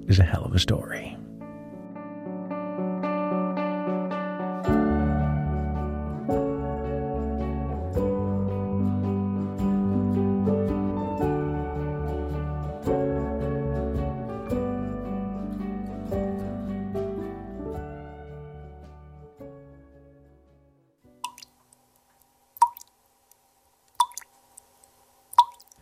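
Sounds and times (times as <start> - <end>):
speech: 0.0 - 1.2
music: 0.0 - 21.2
maple sap dripping in a sugar bush in rural Quebec: 21.2 - 25.7.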